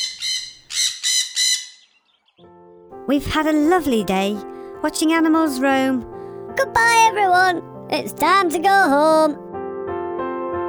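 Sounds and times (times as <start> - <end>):
parrots squawking: 0.0 - 2.2
speech: 3.1 - 9.4.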